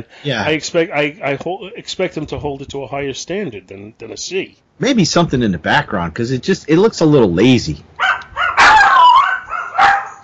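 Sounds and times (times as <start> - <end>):
speech: 0.0 - 7.9
dog barking: 8.0 - 10.2.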